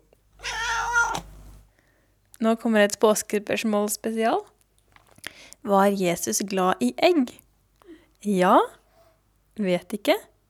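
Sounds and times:
cat meowing: 0:00.4 - 0:01.4
speech: 0:02.4 - 0:04.5, 0:05.6 - 0:07.4, 0:08.2 - 0:08.8, 0:09.6 - 0:10.3.

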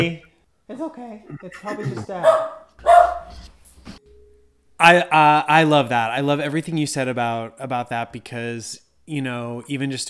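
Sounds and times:
speech: 0:00.0 - 0:03.5, 0:04.8 - 0:10.0
dog barking: 0:02.2 - 0:03.3.

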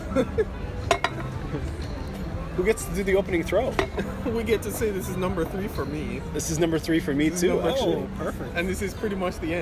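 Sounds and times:
speech: 0:00.1 - 0:00.6, 0:02.6 - 0:09.6
beer glasses clinking in a toast: 0:00.8 - 0:01.5, 0:03.7 - 0:04.2.

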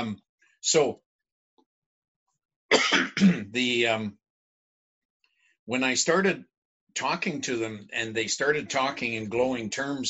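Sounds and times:
speech: 0:00.1 - 0:01.0, 0:03.2 - 0:04.2, 0:05.7 - 0:10.0
man clearing his throat: 0:02.7 - 0:03.6.

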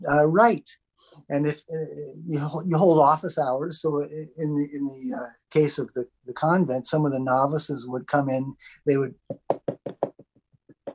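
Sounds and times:
speech: 0:00.0 - 0:09.7
knocking on a door: 0:09.3 - 0:10.2.

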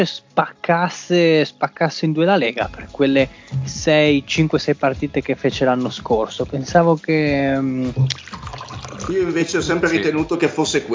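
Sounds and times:
speech: 0:00.0 - 0:08.5, 0:09.1 - 0:10.9
person drinking a beverage with wet swallowing and slurping: 0:07.9 - 0:09.1.

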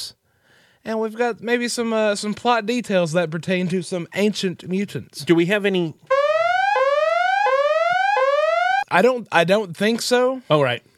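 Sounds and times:
speech: 0:00.8 - 0:06.2, 0:08.9 - 0:10.9
electronic siren sound effect used as a spoiler alert alarm: 0:06.1 - 0:08.9.

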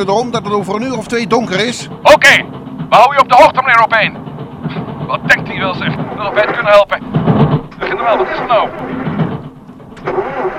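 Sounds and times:
speech: 0:00.0 - 0:07.3, 0:07.9 - 0:09.0
car engine with blocked air intake sputtering and stalling: 0:00.0 - 0:10.5.

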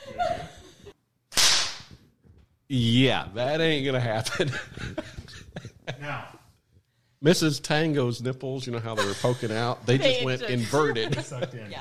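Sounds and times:
laughter: 0:00.0 - 0:01.0, 0:04.1 - 0:06.4, 0:08.8 - 0:11.7
sharp loud whip crack with a decaying swish: 0:01.3 - 0:02.0
speech: 0:02.7 - 0:05.1, 0:07.2 - 0:11.7.

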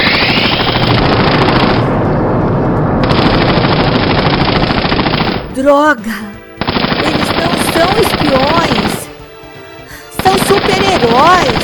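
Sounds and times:
machine gun firing bursts: 0:00.0 - 0:02.0, 0:03.0 - 0:05.5, 0:06.6 - 0:09.2, 0:10.2 - 0:11.6
speech: 0:05.7 - 0:06.2.

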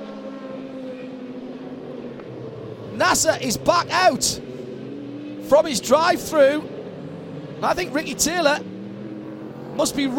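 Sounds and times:
race cars including a Corvette passing on a track: 0:00.0 - 0:10.1
speech: 0:03.0 - 0:04.5, 0:05.5 - 0:06.7, 0:07.6 - 0:08.7, 0:09.8 - 0:10.1.

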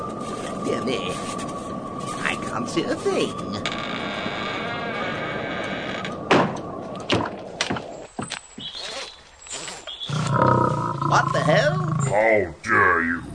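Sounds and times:
howling blizzard wind: 0:00.0 - 0:13.3
speech: 0:00.7 - 0:01.5, 0:02.5 - 0:03.9, 0:12.2 - 0:13.3
deep growls of a lion: 0:10.1 - 0:13.3
lion roaring: 0:10.1 - 0:13.3.

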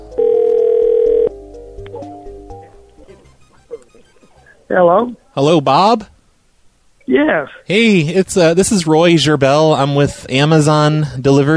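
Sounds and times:
telephone ring tone through a phone line calling a cell phone: 0:00.1 - 0:01.3, 0:03.2 - 0:04.6
speech: 0:04.7 - 0:06.2, 0:07.1 - 0:11.5.

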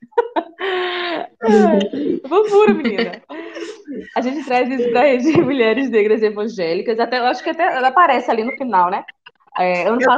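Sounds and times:
laughter: 0:00.0 - 0:05.4
baby whimpering in the room: 0:01.4 - 0:02.3
speech: 0:01.5 - 0:03.3, 0:04.0 - 0:10.1.

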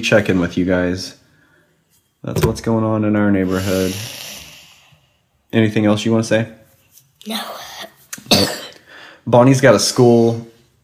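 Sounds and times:
speech: 0:00.0 - 0:01.2, 0:02.2 - 0:04.3, 0:05.5 - 0:06.6, 0:07.2 - 0:08.6, 0:09.3 - 0:10.5
child making loud voiced sounds: 0:03.4 - 0:04.9, 0:07.2 - 0:08.1
child giving a raspy cough: 0:07.3 - 0:08.8.

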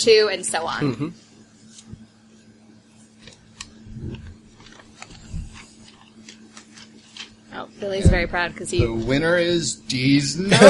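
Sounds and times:
speech: 0:00.0 - 0:01.2, 0:07.6 - 0:10.6
slips of paper rustling as pulled from an envelope: 0:03.2 - 0:07.5
soft low thumps: 0:03.8 - 0:04.5, 0:05.1 - 0:05.7, 0:07.9 - 0:09.4.

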